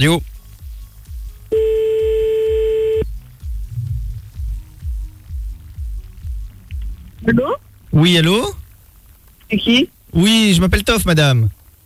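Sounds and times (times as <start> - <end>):
speech: 0.0 - 0.3, 7.3 - 8.6, 9.5 - 11.6
low pulsing rhythmic beat: 0.0 - 7.8
ringing tone of an outgoing telephone call: 1.6 - 3.0.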